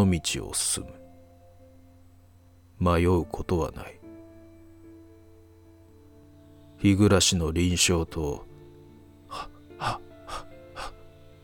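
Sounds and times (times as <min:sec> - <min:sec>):
speech: 0:00.0 - 0:01.0, 0:02.8 - 0:04.0, 0:06.8 - 0:08.5, 0:09.3 - 0:10.0
faint low hum: 0:00.0 - 0:11.4
heavy panting breaths: 0:09.3 - 0:11.1.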